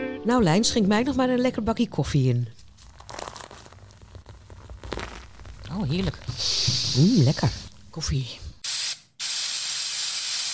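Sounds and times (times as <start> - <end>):
speech: 0.2 - 2.6, 5.8 - 8.5
perfume sprayed from a spray bottle: 6.3 - 7.3, 8.6 - 10.5.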